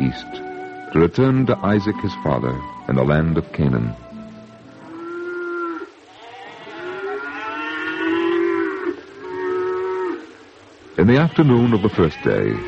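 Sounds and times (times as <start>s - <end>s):
speech: 0.1s - 4.0s, 11.0s - 12.6s
oxen lowing among sheep and goats: 2.6s - 12.6s.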